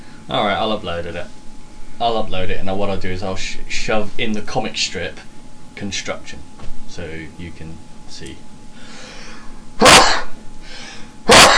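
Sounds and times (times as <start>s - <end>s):
speech: 0.3s - 1.4s, 2.0s - 8.5s
breathing: 8.8s - 9.6s, 10.6s - 11.2s
person sneezing: 9.8s - 10.4s, 11.3s - 11.5s.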